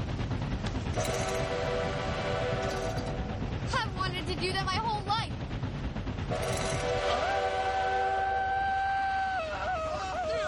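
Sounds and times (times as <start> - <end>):
steam train engine rumbling hiss: 0.0 - 10.4
steam train whistle blown by pulling its rope: 1.0 - 3.2, 6.3 - 9.5.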